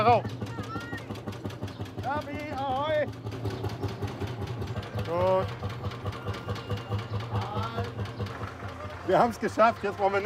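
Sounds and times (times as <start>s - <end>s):
tractor engine idling: 0.0s - 10.2s
speech: 9.1s - 10.2s.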